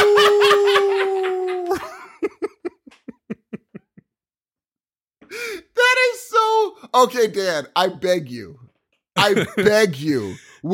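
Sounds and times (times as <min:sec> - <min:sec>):
person imitating a werewolf howl: 0:00.0 - 0:01.8
person laughing: 0:00.0 - 0:04.0, 0:09.2 - 0:10.6
speech: 0:06.9 - 0:08.6, 0:09.2 - 0:10.7.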